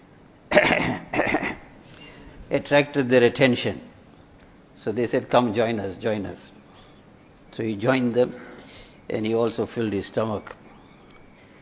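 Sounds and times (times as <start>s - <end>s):
man coughing: 0.5s - 1.7s
speech: 2.5s - 3.9s, 4.8s - 6.6s, 7.5s - 8.5s, 9.1s - 10.6s.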